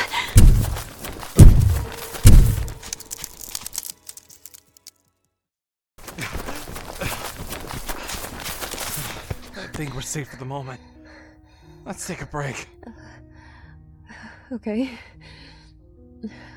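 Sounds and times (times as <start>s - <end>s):
footsteps of people running away from a creature: 0.0s - 3.6s, 6.0s - 9.5s
rustling patter of movement: 0.0s - 4.9s, 6.0s - 9.5s
heavy thuds: 0.1s - 2.9s
speech: 9.8s - 10.9s, 11.9s - 13.1s, 14.5s - 15.1s, 16.2s - 16.5s.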